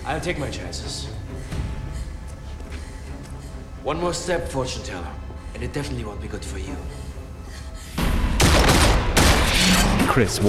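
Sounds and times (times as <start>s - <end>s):
speech: 0.1s - 1.6s, 3.8s - 7.0s, 10.1s - 10.4s
rapid gunfire during a standoff with a terrorist: 8.4s - 9.8s.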